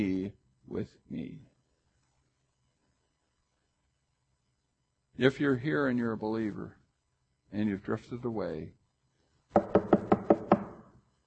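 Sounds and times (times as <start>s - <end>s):
speech: 0.0s - 1.5s, 5.2s - 6.8s, 7.5s - 8.8s
knocking on a wooden door: 9.6s - 10.9s.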